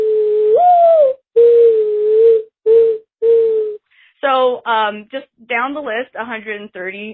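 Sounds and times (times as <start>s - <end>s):
human voice imitating a mourning dove call: 0.0s - 3.8s
speech: 4.3s - 7.1s.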